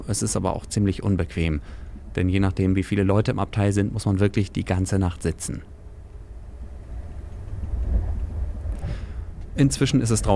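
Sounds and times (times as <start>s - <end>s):
speech: 0.1s - 5.8s, 9.6s - 10.3s
faint rattling: 5.7s - 10.3s
night train rolling along the tracks after a stop in Bremen: 5.8s - 10.3s.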